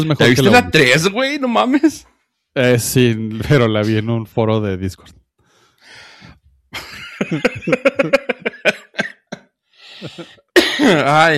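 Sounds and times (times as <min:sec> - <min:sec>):
speech: 0:00.0 - 0:05.2, 0:07.2 - 0:08.8, 0:10.0 - 0:11.3
person laughing: 0:06.8 - 0:11.0
person coughing roughly and breathily: 0:08.8 - 0:09.4, 0:10.0 - 0:11.1.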